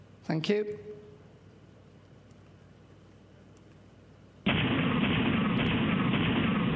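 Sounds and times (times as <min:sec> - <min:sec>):
speech: 0:00.3 - 0:01.0
rapid pulsed explosions blurring into a buzzing tone: 0:04.5 - 0:06.7.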